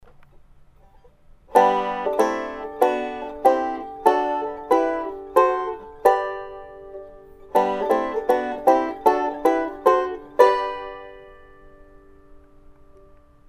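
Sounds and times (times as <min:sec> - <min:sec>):
harmony in the key of G: 0:01.5 - 0:13.4.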